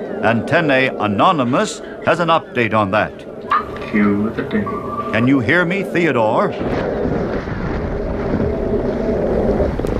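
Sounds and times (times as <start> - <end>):
water noise around a small dinghy below an oil rig: 0.0 - 9.9
wind around a small dinghy below an oil rig: 0.0 - 9.9
speech: 0.2 - 6.9.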